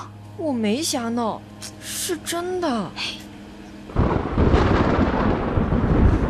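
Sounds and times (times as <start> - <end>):
speech: 0.4 - 3.2
heavy steady rain: 3.9 - 6.2
loud crack of thunder: 3.9 - 6.2.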